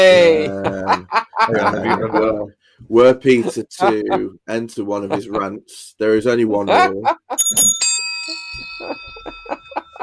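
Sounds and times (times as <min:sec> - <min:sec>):
laughter: 0:00.0 - 0:02.5, 0:03.3 - 0:04.4, 0:05.0 - 0:05.5, 0:06.5 - 0:07.4, 0:08.8 - 0:10.0
speech: 0:00.0 - 0:09.4
handheld bell ringing: 0:07.4 - 0:10.0
lighter rhythmic jingles: 0:07.4 - 0:10.0.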